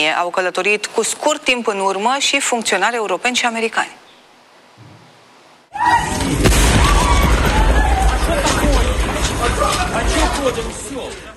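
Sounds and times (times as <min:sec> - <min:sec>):
speech: 0:00.0 - 0:04.0, 0:09.4 - 0:11.3
powerful explosion from drone strike on train station: 0:06.0 - 0:11.0.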